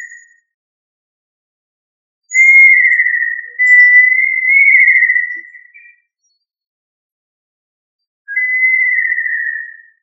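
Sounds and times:
tinamou giving sustained whistles: 0:02.3 - 0:05.4, 0:08.3 - 0:09.6.

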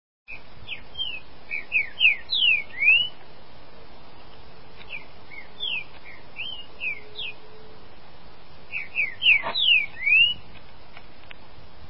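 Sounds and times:
green-winged saltator song: 0:00.3 - 0:03.2, 0:04.9 - 0:07.7, 0:08.7 - 0:10.5.

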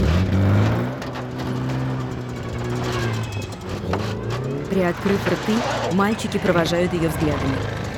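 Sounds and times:
car engine droning as it drives off around a hut into a forest: 0:00.0 - 0:07.9
speech: 0:04.8 - 0:07.8.

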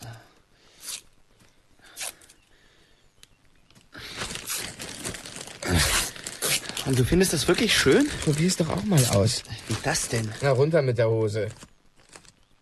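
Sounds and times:
adhesive tape being torn and wrapped around someone's legs: 0:00.8 - 0:01.1, 0:01.8 - 0:02.4, 0:04.1 - 0:07.0, 0:08.0 - 0:10.4
speech: 0:06.9 - 0:11.7.

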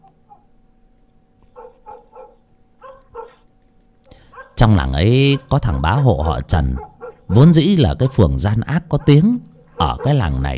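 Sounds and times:
pack of village dogs barking at night: 0:00.0 - 0:00.6, 0:01.4 - 0:03.5, 0:04.1 - 0:10.5
village dogs yipping softly: 0:00.2 - 0:00.5, 0:01.4 - 0:03.5, 0:04.2 - 0:04.6, 0:05.3 - 0:07.4, 0:08.9 - 0:10.3
speech: 0:04.6 - 0:10.5.

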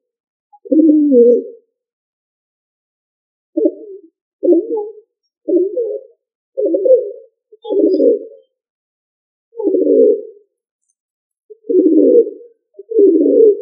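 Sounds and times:
pigeon giving low husky rolling coos: 0:00.6 - 0:01.6, 0:03.6 - 0:08.5, 0:09.6 - 0:10.4, 0:11.5 - 0:13.6
speech: 0:01.1 - 0:01.6.

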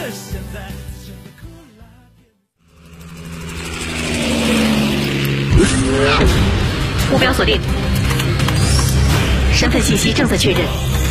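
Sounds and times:
all-aluminium petrol V8 engine revving in an all-wheel-drive car: 0:02.7 - 0:11.0
speech: 0:07.2 - 0:07.8, 0:09.6 - 0:10.9.

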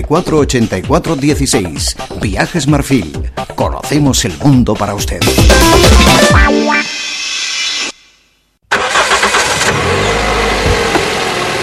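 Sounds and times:
speech: 0:00.0 - 0:06.7
car engine starting: 0:08.7 - 0:11.6.

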